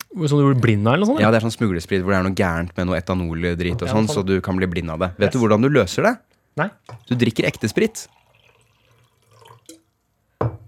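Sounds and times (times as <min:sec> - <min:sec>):
speech: 0:00.2 - 0:08.2
water being poured: 0:06.8 - 0:10.1.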